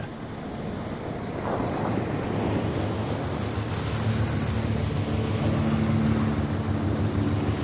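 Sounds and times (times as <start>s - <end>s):
low engine hum of a large naval ship: 0.0s - 7.6s
sea waves rushing around a British naval fleet ship: 0.0s - 7.6s
wind blowing across the microphone: 0.0s - 7.6s
faint tonal drone: 3.2s - 7.6s.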